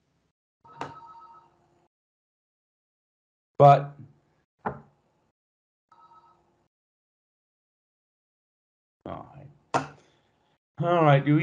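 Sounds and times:
telephone ringing: 0.6 - 1.6, 5.9 - 6.5
speech: 3.6 - 4.0, 10.8 - 11.4.

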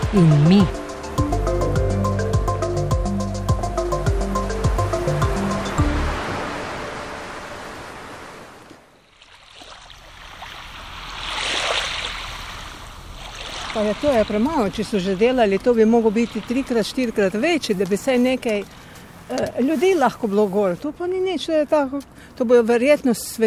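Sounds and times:
melodic music: 0.0 - 7.6
sea waves washing in: 0.0 - 20.9
speech: 0.1 - 0.8, 13.9 - 23.4.

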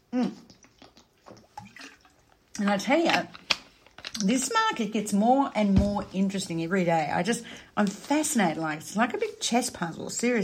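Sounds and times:
person drinking water: 0.0 - 2.6
speech: 0.1 - 0.4, 2.6 - 3.4, 4.2 - 10.4.

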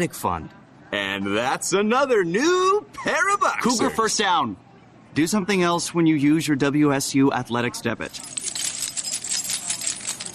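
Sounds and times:
speech: 0.0 - 8.5
bunch of keys jangling: 8.1 - 10.3.

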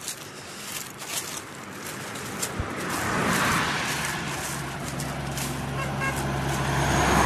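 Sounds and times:
road noise: 0.0 - 7.2
car rushing past: 2.6 - 7.2
passing car horn honk: 5.6 - 6.4.

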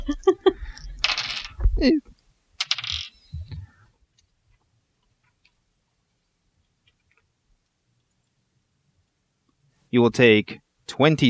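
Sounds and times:
large thirty-sided dice clattering across a hard tabletop: 1.0 - 1.7, 2.6 - 3.5
speech: 1.8 - 2.1, 9.9 - 11.2.

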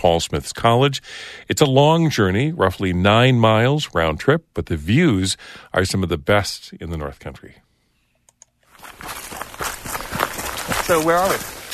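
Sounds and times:
speech: 0.0 - 7.7, 10.9 - 11.7
faint clicks: 8.1 - 8.6
footsteps climbing a wide gently sloping mountain trail: 8.7 - 11.7.

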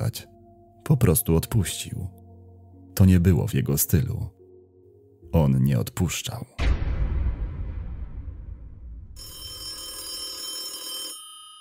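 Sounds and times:
speech: 0.1 - 0.3, 0.9 - 2.2, 3.0 - 4.4, 5.3 - 6.7
low rumbling whoosh: 6.6 - 9.2
telephone bell ringing: 9.2 - 11.5.

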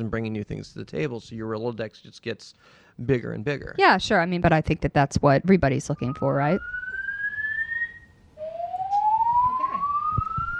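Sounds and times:
speech: 0.0 - 6.8
faint noise: 0.0 - 10.5
building fire alarm wailing with a rising electronic tone: 5.8 - 10.5.

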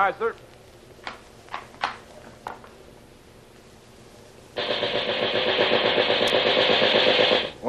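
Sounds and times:
speech: 0.0 - 0.5
machine gun test-fired to check it works: 4.6 - 7.6.

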